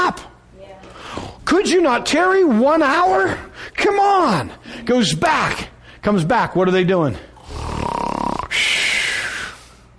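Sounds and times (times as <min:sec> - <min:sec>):
speech: 0:01.5 - 0:07.3
voice imitating a loud snore: 0:07.4 - 0:08.8.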